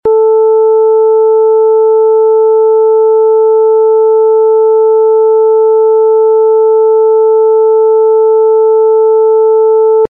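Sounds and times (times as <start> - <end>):
440Hz sine tone at full scale: 0.1 - 10.0.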